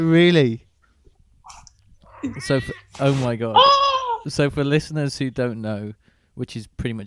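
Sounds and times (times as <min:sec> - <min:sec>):
speech: 0:00.0 - 0:00.6, 0:02.2 - 0:07.0
cat meowing: 0:02.1 - 0:02.9, 0:03.6 - 0:04.3.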